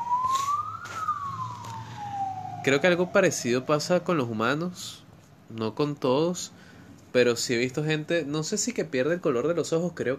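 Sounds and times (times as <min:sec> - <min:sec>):
ambulance siren wailing: 0:00.0 - 0:04.8
low rumble of traffic: 0:00.0 - 0:10.1
speech: 0:02.6 - 0:10.1.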